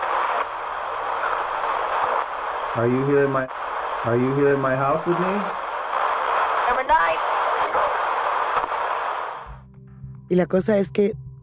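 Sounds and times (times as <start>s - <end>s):
spirit box radio clicks: 0.0s - 2.8s, 3.5s - 9.2s
spirit box radio scanning through static: 0.0s - 9.5s
speech: 2.8s - 5.6s, 10.3s - 11.2s.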